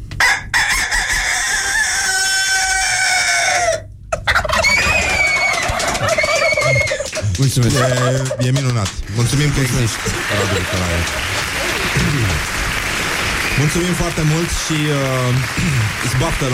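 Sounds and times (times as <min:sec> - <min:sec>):
person imitating a rooster crowing: 0:00.2 - 0:03.9, 0:04.6 - 0:07.1
laughter: 0:04.9 - 0:12.8, 0:13.6 - 0:16.5
speech: 0:07.4 - 0:12.5, 0:13.6 - 0:16.5.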